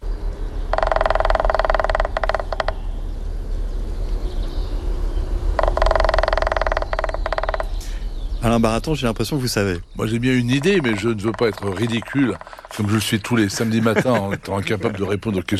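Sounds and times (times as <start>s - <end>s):
steady low noise: 0.0s - 15.5s
male woodpecker drumming on a tree trunk to mark its territory: 0.6s - 3.2s, 5.5s - 8.1s, 9.9s - 13.4s
speech: 8.5s - 15.5s
laughter: 13.3s - 15.5s.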